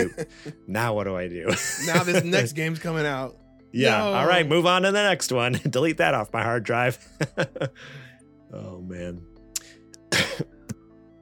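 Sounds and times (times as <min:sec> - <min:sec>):
speech: 0:00.0 - 0:09.3, 0:10.1 - 0:10.6
laughter: 0:01.5 - 0:02.6, 0:07.0 - 0:07.8
sharp harsh cough: 0:10.1 - 0:10.5.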